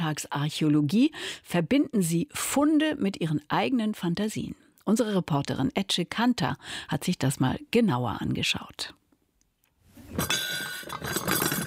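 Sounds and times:
speech: 0:00.1 - 0:09.0, 0:10.2 - 0:11.6
porcelain dishes with gold rims clinking on a cardboard shelf: 0:10.1 - 0:11.6.

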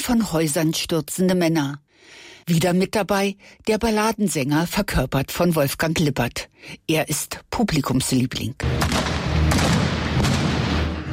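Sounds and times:
speech: 0:00.0 - 0:09.7
bombard cannon firing balls into water during a stage show: 0:08.7 - 0:11.1.

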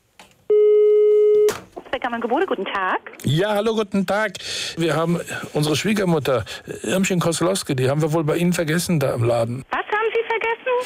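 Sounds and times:
telephone ringback tone on a prank call to a bakery: 0:00.5 - 0:01.5
speech: 0:02.1 - 0:09.8.

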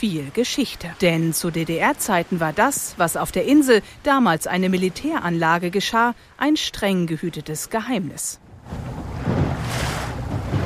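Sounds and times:
speech: 0:00.0 - 0:08.9
wind and water noise on open water: 0:00.0 - 0:10.6
small boat moving across open water: 0:08.4 - 0:10.6.

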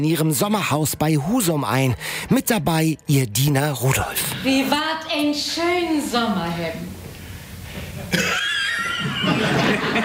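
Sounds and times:
speech: 0:00.0 - 0:07.0, 0:08.1 - 0:08.5, 0:09.2 - 0:10.0
laughter: 0:07.8 - 0:10.0
man coughing harshly: 0:08.1 - 0:08.8.

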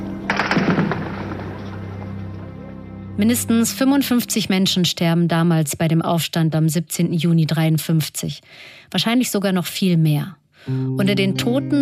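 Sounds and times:
heavy exchange of gunfire during an uprising: 0:00.3 - 0:02.2
speech: 0:03.2 - 0:11.8.

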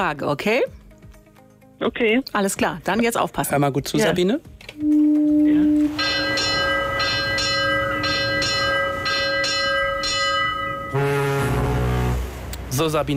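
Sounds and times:
speech: 0:00.0 - 0:00.8, 0:01.8 - 0:05.0, 0:12.8 - 0:13.1
ship's bell ringing as a ship leaves port during a harbour sailing event: 0:04.9 - 0:12.1.

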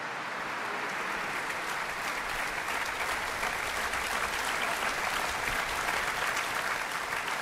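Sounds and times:
large audience applauding in an open church after a violin performance: 0:00.0 - 0:07.3.

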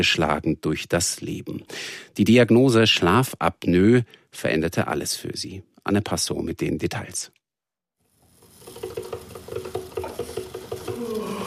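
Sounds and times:
speech: 0:00.0 - 0:07.4
coffee machine brewing with hum, pumping pulses, gurgling and hissing: 0:08.1 - 0:11.4.

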